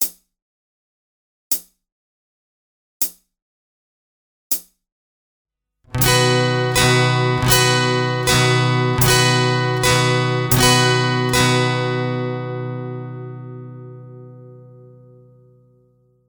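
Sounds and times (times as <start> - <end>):
slow guitar eighth notes played with capo: 5.9 - 16.0.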